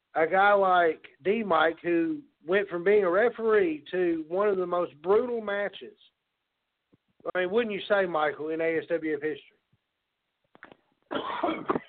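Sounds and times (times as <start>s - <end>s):
speech: 0.2s - 6.1s, 7.3s - 9.5s, 11.1s - 11.8s
person coughing: 11.1s - 11.8s.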